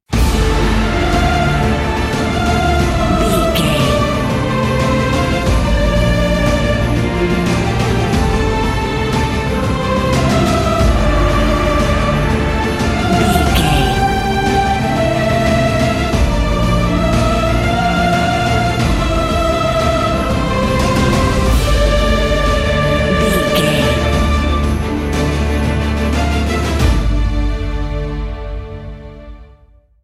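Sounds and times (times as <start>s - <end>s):
epic cinematic music: 0.1s - 29.6s.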